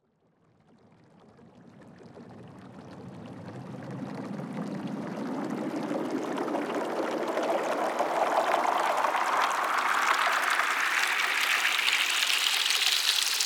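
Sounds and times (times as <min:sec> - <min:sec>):
water riser sound effect: 0:03.4 - 0:13.4.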